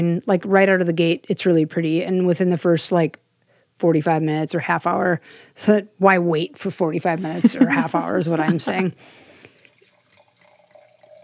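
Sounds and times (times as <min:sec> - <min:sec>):
speech: 0:00.0 - 0:03.2, 0:03.8 - 0:09.2
laughter: 0:07.2 - 0:08.9
wine pouring into a glass: 0:08.6 - 0:11.2.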